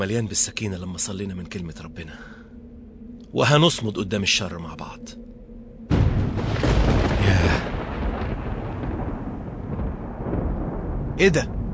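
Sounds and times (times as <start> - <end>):
speech: 0.0 - 2.4, 3.3 - 5.3, 11.2 - 11.6
thunder from a lightning strike setting a tree alight: 5.8 - 11.7.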